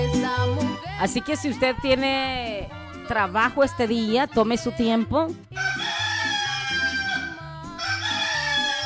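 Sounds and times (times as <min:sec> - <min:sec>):
speech: 0:01.0 - 0:05.6
rooster crowing: 0:05.6 - 0:08.8.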